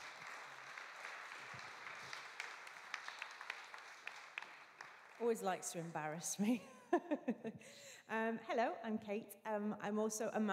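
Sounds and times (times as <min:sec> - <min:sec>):
crowd applauding: 0:00.0 - 0:05.9
speech: 0:01.5 - 0:01.8, 0:05.2 - 0:10.5.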